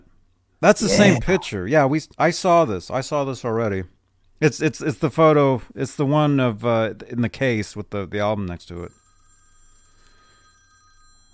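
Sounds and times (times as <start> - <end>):
speech: 0.6 - 9.0
telephone ringing with continuous trilling tone: 8.9 - 11.3.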